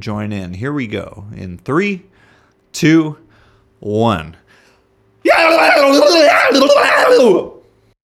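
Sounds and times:
speech: 0:00.0 - 0:03.2, 0:03.8 - 0:04.4, 0:05.2 - 0:07.5
people screaming together: 0:05.3 - 0:07.6.

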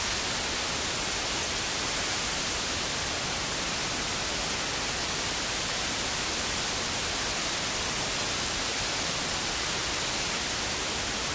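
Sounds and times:
white noise hiss: 0:00.0 - 0:11.3.

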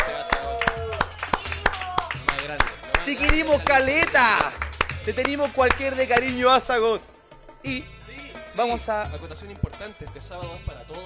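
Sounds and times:
sharp hand claps: 0:00.0 - 0:06.7
speech: 0:03.1 - 0:08.0, 0:08.6 - 0:11.0.

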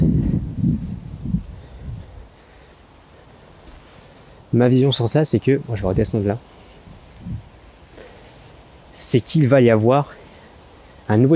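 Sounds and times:
wind gusts outdoors: 0:00.0 - 0:11.3
speech: 0:04.5 - 0:06.6, 0:09.1 - 0:10.2, 0:11.1 - 0:11.3.

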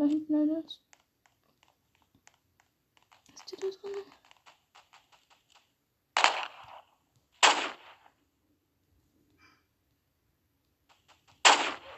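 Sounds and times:
speech: 0:00.4 - 0:00.9, 0:03.5 - 0:04.2
sniper rifle shots in a video game: 0:06.2 - 0:08.1, 0:11.1 - 0:11.9.

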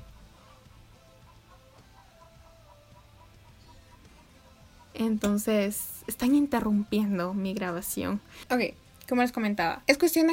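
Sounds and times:
roosters crowing at neighbors' house: 0:00.0 - 0:05.0
speech: 0:05.0 - 0:10.3.

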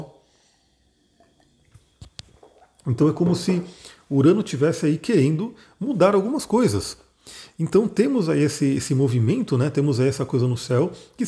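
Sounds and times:
person sipping and swallowing water: 0:00.4 - 0:04.1
speech: 0:02.8 - 0:11.2.

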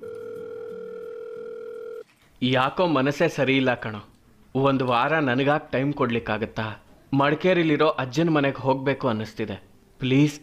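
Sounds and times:
telephone call tone, steady unbroken electronic tone: 0:00.0 - 0:02.1
speech: 0:02.4 - 0:10.4.

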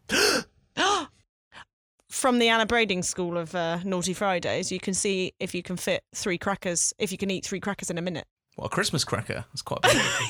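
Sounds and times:
person gasping theatrically: 0:00.0 - 0:01.1
speech: 0:02.2 - 0:10.2
laughter: 0:09.8 - 0:10.2.

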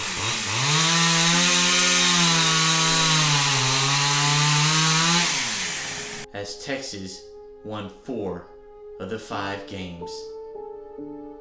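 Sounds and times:
chainsaw engine revving with a loud buzzing drone: 0:00.0 - 0:06.2
speech: 0:06.4 - 0:10.4.

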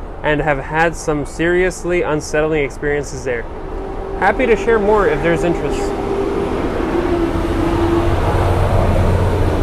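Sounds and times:
speech: 0:00.2 - 0:06.1
garbage trucks rumbling past outside: 0:01.2 - 0:09.6.

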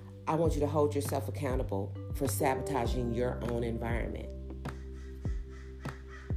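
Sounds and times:
speech: 0:00.3 - 0:04.4
bird calling outdoors: 0:04.8 - 0:06.3.

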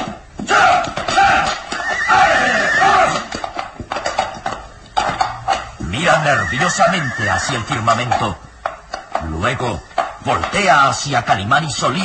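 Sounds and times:
horse hooves clattering while climbing over rocks: 0:00.0 - 0:12.0
horse whinnying: 0:00.4 - 0:08.4
horse snorting: 0:00.8 - 0:10.7
speech: 0:06.3 - 0:08.5, 0:09.3 - 0:12.0.

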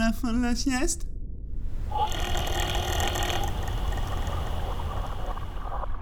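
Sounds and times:
speech: 0:00.1 - 0:01.1
profiling float measurement pump motor droning at around 1000 metres depth: 0:01.7 - 0:05.9.

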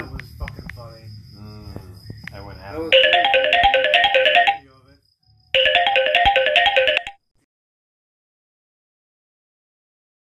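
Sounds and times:
phone ringtone melody for an incoming call: 0:02.9 - 0:04.6, 0:05.6 - 0:07.2.

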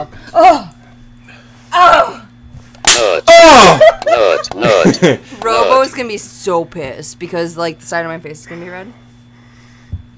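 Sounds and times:
loud yelling and strained vocal cries: 0:01.7 - 0:02.3, 0:03.2 - 0:03.9
hand slapping a person's face: 0:02.8 - 0:03.1
laughter: 0:03.4 - 0:05.5
speech: 0:03.6 - 0:09.0.

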